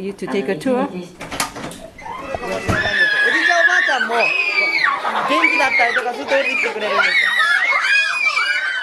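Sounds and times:
young children shrieking and shouting while playing in a preschool: 2.0 - 8.8.

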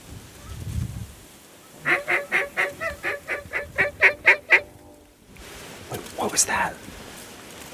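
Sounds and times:
duck call blown in nasal quacks: 1.8 - 4.9
speech: 6.4 - 6.9.

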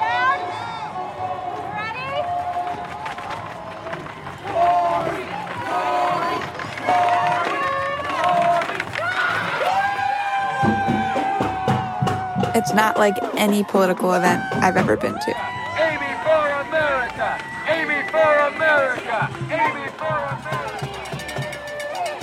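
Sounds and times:
large outdoor crowd chattering: 0.0 - 22.2
people in a crowd shouting: 0.0 - 22.2
speech: 12.6 - 15.4.

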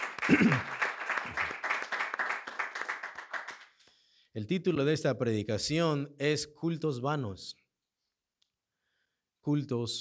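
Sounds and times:
audience clapping: 0.0 - 4.0
speech: 0.3 - 0.8, 4.4 - 7.6, 9.4 - 10.0.

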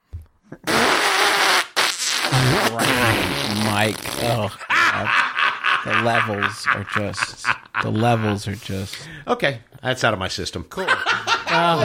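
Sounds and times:
person blowing raspberries with mouth to imitate farting: 0.5 - 4.4
speech: 3.7 - 11.8
laughter: 4.5 - 8.9, 10.8 - 11.8.

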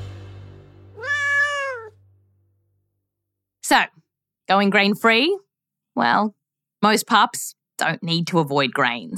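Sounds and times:
house cat meowing: 1.0 - 2.0
speech: 3.7 - 9.1.

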